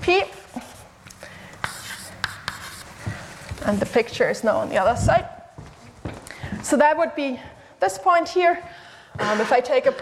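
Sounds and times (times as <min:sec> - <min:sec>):
scratching and tapping of writing on a board: 0:01.6 - 0:04.1
speech: 0:03.7 - 0:05.4, 0:06.7 - 0:09.9.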